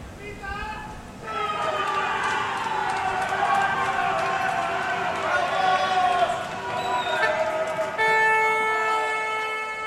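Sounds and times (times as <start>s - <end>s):
many voices shouting together: 1.2s - 9.8s
neighborhood crowd in Madrid cheering Spain's World Cup win: 1.2s - 9.8s
car horns blaring: 6.8s - 9.8s.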